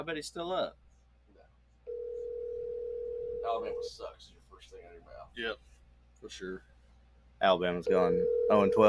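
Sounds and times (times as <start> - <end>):
speech: 0.0 - 0.8, 3.4 - 6.7, 7.4 - 8.8
electronic phone ringing tone of an outgoing call: 1.9 - 3.8, 7.9 - 8.8.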